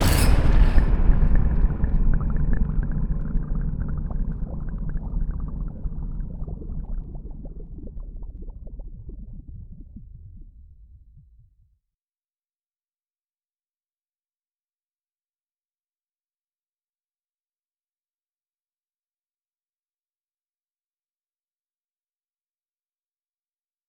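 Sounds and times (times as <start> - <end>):
bubbling blast: 0.0 - 11.2.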